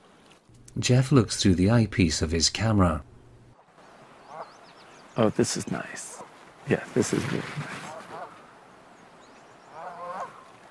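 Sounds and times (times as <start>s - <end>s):
speech: 0.8s - 3.1s, 5.2s - 6.1s, 6.7s - 7.8s
geese honking: 4.2s - 4.6s, 7.9s - 8.5s, 9.7s - 10.6s.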